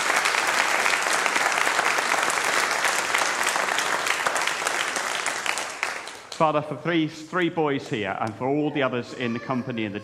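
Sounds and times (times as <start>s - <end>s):
crowd of people applauding: 0.0s - 6.6s
speech: 6.4s - 10.0s.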